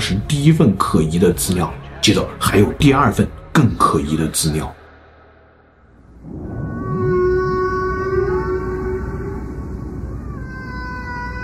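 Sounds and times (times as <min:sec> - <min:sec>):
speech: 0:00.1 - 0:04.8
humpback whale song: 0:05.9 - 0:11.4.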